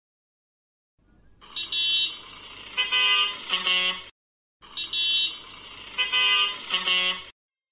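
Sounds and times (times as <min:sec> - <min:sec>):
car horn honking: 0:01.4 - 0:07.3.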